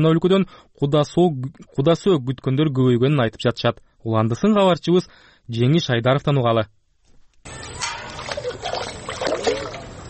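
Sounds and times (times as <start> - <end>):
speech: 0.0 - 6.8
water splashing and sloshing as it is carried from a pond at dawn: 7.5 - 10.0.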